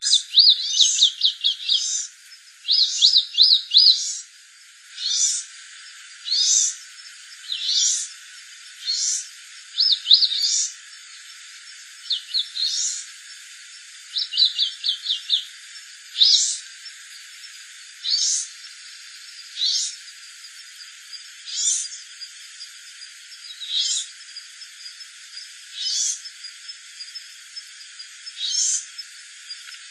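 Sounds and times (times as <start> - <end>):
Polioptila dumicola masked gnatcatcher calling: 0.0 - 4.3, 5.0 - 8.2, 8.8 - 11.4, 12.0 - 13.1, 14.1 - 16.9, 18.0 - 20.0, 23.4 - 24.1.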